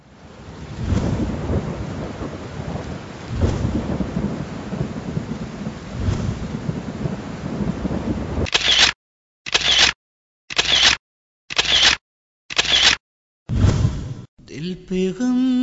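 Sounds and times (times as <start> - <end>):
heavy rain pouring steadily: 0.0 - 8.9
deep rolls of thunder rumbling: 0.1 - 8.5
short sharp bursts: 8.5 - 13.0
speech: 14.8 - 15.5.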